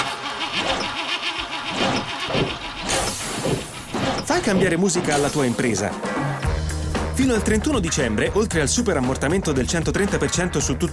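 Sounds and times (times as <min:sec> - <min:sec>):
worn commercial vehicle engine running roughly: 0:00.0 - 0:05.4
speech: 0:04.4 - 0:06.5, 0:07.2 - 0:10.9.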